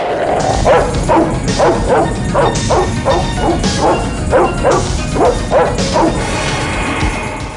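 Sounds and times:
continuous low rumbling background: 0:00.0 - 0:07.5
caged dog barking aggressively: 0:00.4 - 0:06.3.

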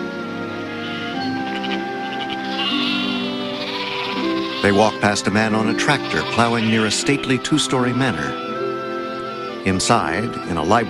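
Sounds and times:
flock of sheep bleating in a large grassy field: 0:00.2 - 0:07.4, 0:10.4 - 0:10.8
speech: 0:04.7 - 0:08.4, 0:09.7 - 0:10.8.

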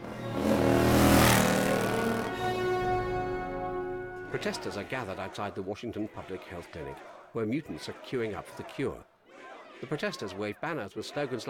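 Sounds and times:
motorcycle riding out through mansion gates: 0:00.0 - 0:04.8
speech: 0:04.3 - 0:09.1, 0:09.8 - 0:11.4.

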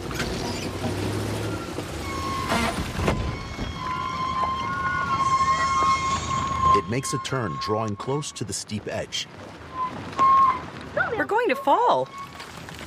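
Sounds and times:
minibus rattling along rough dirt mountain path: 0:00.0 - 0:07.0, 0:09.7 - 0:12.8
speech: 0:06.9 - 0:09.6, 0:11.2 - 0:12.3.

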